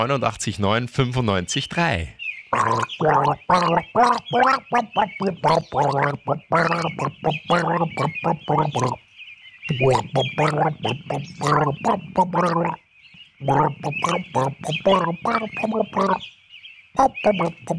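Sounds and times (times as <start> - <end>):
speech: 0.0 - 9.0, 9.7 - 12.8, 13.4 - 16.4, 17.0 - 17.7
person gargling a song: 2.5 - 9.0, 9.7 - 12.8, 13.4 - 16.2, 17.0 - 17.7.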